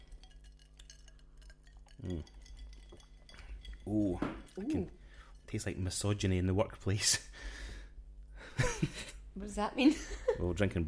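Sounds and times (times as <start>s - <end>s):
drinking glasses clinking in a toast: 0.0s - 5.8s
steady low room hum: 0.0s - 10.8s
speech: 2.0s - 2.4s, 3.9s - 7.6s, 8.8s - 10.8s.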